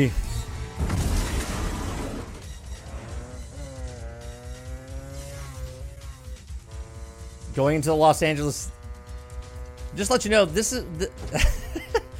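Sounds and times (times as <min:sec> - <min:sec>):
speech: 0:00.0 - 0:00.2, 0:07.6 - 0:08.8, 0:10.0 - 0:11.9
crashing and skidding noise: 0:00.2 - 0:03.1
motorcycle engine roaring and revving: 0:00.3 - 0:12.1
laughter: 0:11.0 - 0:12.1.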